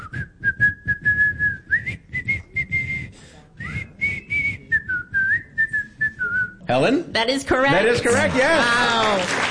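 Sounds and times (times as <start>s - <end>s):
person whistling a bouncy nursery-rhyme melody: 0.0s - 6.6s
speech: 6.7s - 9.4s.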